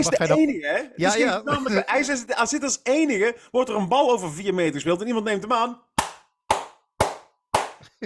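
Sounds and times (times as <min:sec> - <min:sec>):
speech: 0:00.0 - 0:05.9
hand claps: 0:06.0 - 0:08.0.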